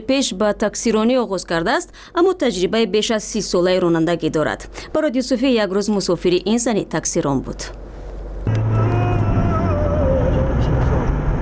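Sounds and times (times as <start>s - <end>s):
speech: 0.0s - 8.6s
old car engine droning on a city street: 8.4s - 11.4s.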